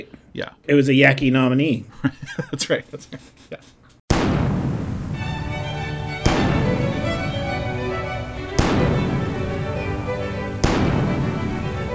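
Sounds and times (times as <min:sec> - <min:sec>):
speech: 0:00.0 - 0:03.8
cannon fire with booming blasts: 0:04.1 - 0:05.4, 0:06.2 - 0:07.3, 0:08.6 - 0:09.8, 0:10.6 - 0:11.5
theme music with tonal harmonics: 0:05.1 - 0:11.9.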